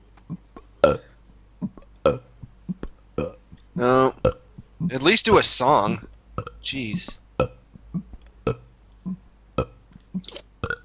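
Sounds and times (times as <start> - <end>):
loud drawn-out burps: 0.8 - 1.1, 2.0 - 2.3, 3.2 - 3.4, 6.4 - 6.6, 7.4 - 7.6, 8.5 - 8.7, 9.6 - 10.8
speech: 3.8 - 4.0, 4.9 - 7.5.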